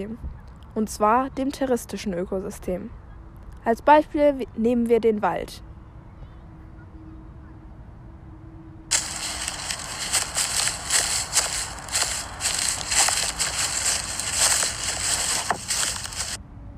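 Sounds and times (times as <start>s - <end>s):
speech: 0.0s - 3.0s, 3.6s - 5.7s
footsteps crunching through a forest over dry autumn leaves: 8.9s - 16.4s.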